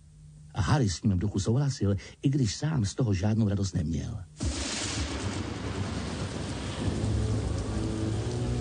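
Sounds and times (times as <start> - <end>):
speech: 0.6 - 4.4
deep thunder rumbling: 4.4 - 8.5
heavy rain in a thunderstorm: 4.4 - 8.5.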